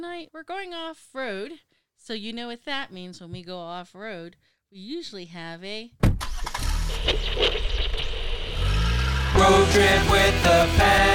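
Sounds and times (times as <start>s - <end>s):
speech: 0.0s - 6.3s, 6.9s - 7.8s
compact car engine revving: 6.5s - 11.1s.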